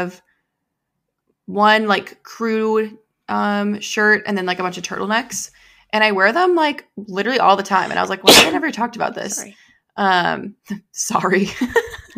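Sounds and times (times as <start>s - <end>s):
speech: 0.0s - 0.3s, 1.5s - 12.1s
sneeze: 7.8s - 8.7s.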